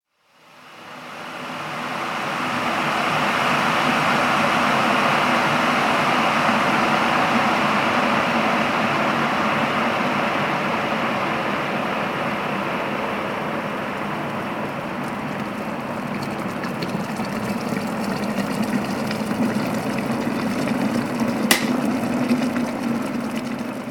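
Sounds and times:
household electric kettle boiling in a kitchen: 0.4 - 23.8
electric kettle automatically switching off with a click: 21.5 - 21.9.

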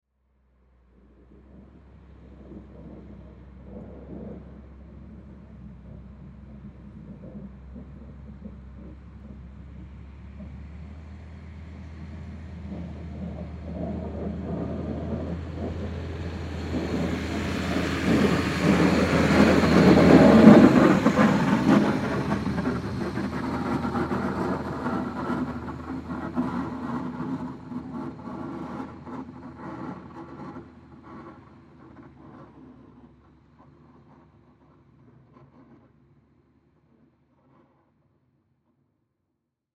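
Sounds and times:
salt truck snow plow driving by: 0.7 - 31.7.

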